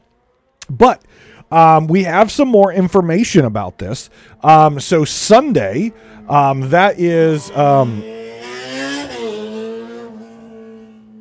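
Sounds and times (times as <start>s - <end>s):
speech: 0.8s - 8.1s
car driving past a house: 4.0s - 11.1s.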